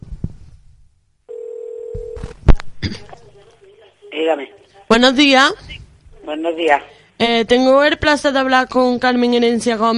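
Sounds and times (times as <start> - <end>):
steady telephone tone as a prank call is placed: 1.3 - 2.4
speech: 4.2 - 5.7, 6.3 - 9.9.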